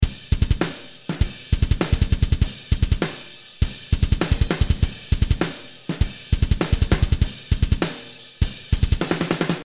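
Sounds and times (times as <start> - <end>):
groove music: 0.0 - 9.6.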